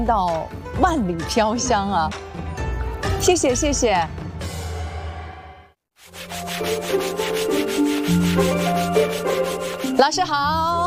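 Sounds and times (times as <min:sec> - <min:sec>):
speech: 0:00.0 - 0:02.4, 0:03.2 - 0:04.2, 0:06.6 - 0:10.8
machine sanding and polishing a horn comb: 0:06.1 - 0:10.1.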